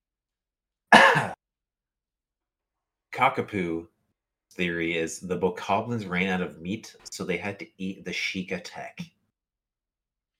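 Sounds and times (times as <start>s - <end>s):
loud harsh cough: 0.9s - 1.4s
speech: 3.2s - 3.9s, 4.5s - 9.2s.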